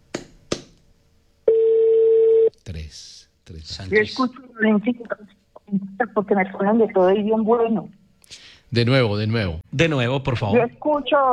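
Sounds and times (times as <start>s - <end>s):
steady mid-pitched telephone tone while a call is placed: 1.5s - 2.5s
speech: 2.9s - 8.0s, 8.7s - 11.3s.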